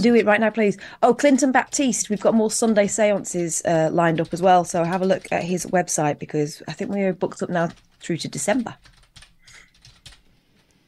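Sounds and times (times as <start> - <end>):
speech: 0.0 - 9.0
typing on a computer keyboard: 1.6 - 3.2, 4.1 - 5.9, 7.6 - 10.7.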